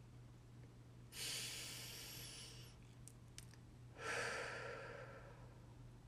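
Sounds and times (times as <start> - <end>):
deep inhale: 1.1 - 2.8, 4.0 - 5.6
slow full exhalation: 1.1 - 2.8, 4.0 - 5.6.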